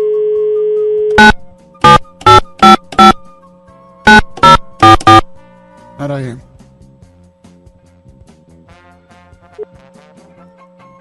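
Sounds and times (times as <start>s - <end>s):
phone ringing on an outgoing call: 0.0s - 3.2s
short bright electronic tone bursts: 1.1s - 3.2s, 4.1s - 5.3s
speech: 6.0s - 6.5s.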